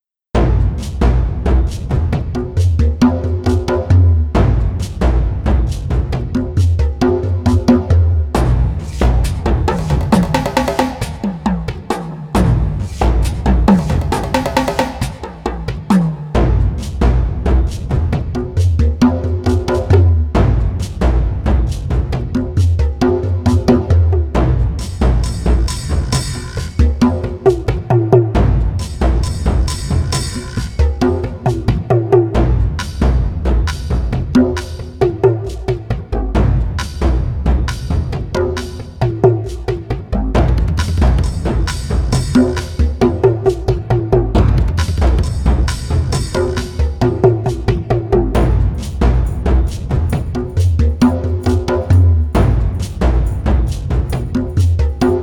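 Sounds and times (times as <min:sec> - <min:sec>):
Hawaiian percussion organic funk groove: 0:00.4 - 0:55.2.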